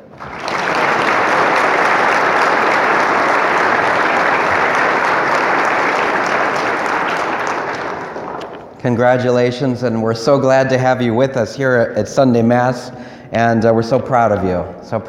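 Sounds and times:
large crowd applauding graduates at a Sunday Mass: 0.0s - 8.8s
speech: 8.8s - 15.0s.

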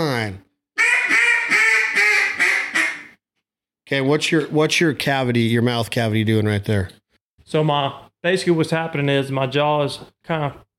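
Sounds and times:
duck call blown as raspy hen mallard quacks: 0.8s - 3.2s
speech: 3.9s - 10.7s.

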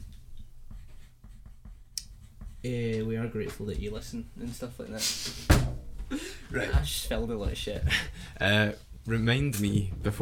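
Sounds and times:
pen strokes as a note is jotted down by hand: 0.6s - 2.7s
speech: 2.6s - 10.2s.

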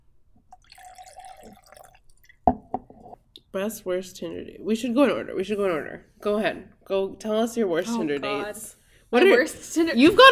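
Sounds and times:
drink pouring into a glass: 0.4s - 3.2s
speech: 3.6s - 10.3s.

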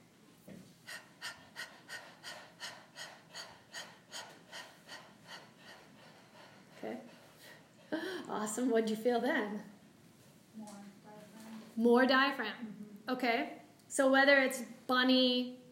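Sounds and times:
person panting like a puppy as a breathing exercise: 0.8s - 8.3s
speech: 8.4s - 9.7s, 11.8s - 15.6s.

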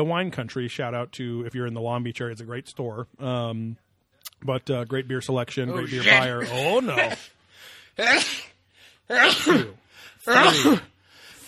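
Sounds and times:
speech: 0.0s - 3.8s, 4.4s - 8.4s, 9.1s - 10.9s
person sneezing forcefully: 8.0s - 11.0s.

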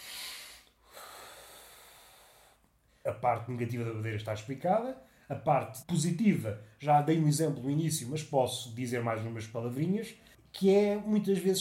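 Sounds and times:
deep breath: 0.0s - 3.1s
speech: 3.0s - 11.6s.

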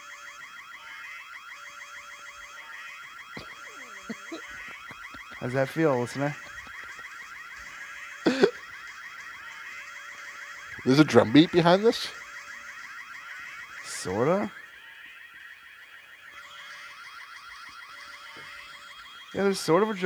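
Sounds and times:
car alarm wailing with warbling tones: 0.0s - 20.0s
laughter: 3.4s - 7.2s, 8.3s - 8.7s
speech: 4.1s - 6.5s, 10.8s - 12.2s, 19.4s - 20.0s.

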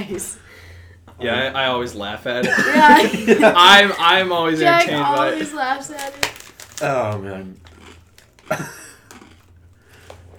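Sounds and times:
speech: 0.0s - 7.7s, 8.5s - 8.8s
laughter: 2.4s - 6.2s, 8.5s - 9.0s
loud wet crunchy chewing with mouth open: 4.9s - 10.3s.

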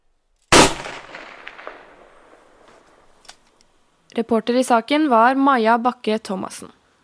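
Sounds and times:
gunshot fired by soldiers during a military exercise in Norway: 0.5s - 2.2s
speech: 4.2s - 6.8s.

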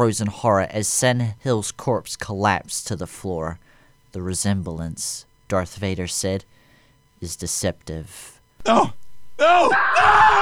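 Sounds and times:
speech: 0.0s - 6.6s, 7.2s - 10.4s
person screaming and wailing in anguish: 8.6s - 10.4s.

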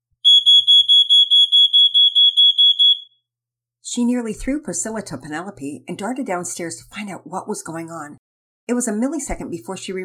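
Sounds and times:
smoke detector alarm beeping: 0.2s - 3.2s
speech: 3.9s - 10.0s.

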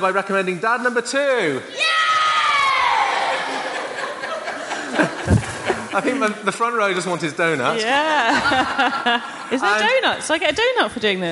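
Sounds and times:
speech: 0.0s - 2.2s, 5.0s - 5.4s, 6.0s - 11.2s
crowd of kids and adults cheering and shouting: 1.7s - 4.0s
laughter: 3.1s - 6.8s, 8.0s - 10.0s.

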